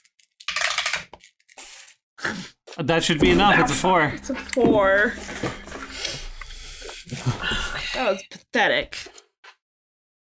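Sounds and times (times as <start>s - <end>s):
die clattering across a hard tabletop during a tabletop game: 0.4s - 1.2s
speech: 2.8s - 5.6s, 8.0s - 9.1s.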